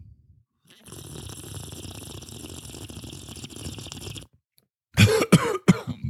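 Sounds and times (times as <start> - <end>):
noisy gurgling slurp of a hot drink: 0.7 - 4.3
harsh coughs after choking on a hot drink: 5.0 - 6.0.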